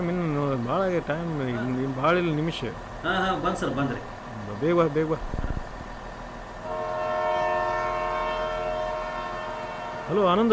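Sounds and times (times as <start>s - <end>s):
speech: 0.0s - 5.4s, 10.1s - 10.5s
rumbling of the rail cars: 0.0s - 10.5s
departing train horn: 6.6s - 10.5s.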